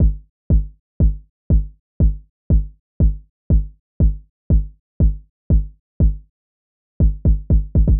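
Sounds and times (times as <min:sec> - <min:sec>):
909 drum machine beat: 0:00.0 - 0:06.2, 0:07.0 - 0:07.9.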